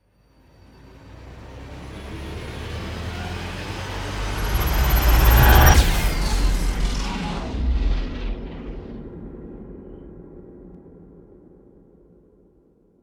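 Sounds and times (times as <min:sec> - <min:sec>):
futuristic cinematic riser: 0:00.6 - 0:09.5.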